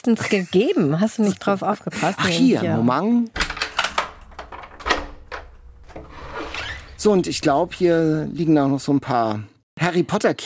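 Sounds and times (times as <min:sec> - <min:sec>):
speech: 0:00.0 - 0:03.4, 0:07.0 - 0:10.4
key rattling and clicking in a lock: 0:03.4 - 0:07.9
door opening clunk: 0:03.4 - 0:08.6.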